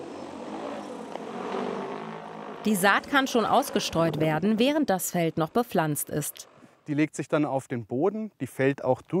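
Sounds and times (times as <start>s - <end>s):
60-kilo agricultural drone rotors whirring during takeoff to sow seed: 0.0s - 4.7s
speech: 2.6s - 9.1s.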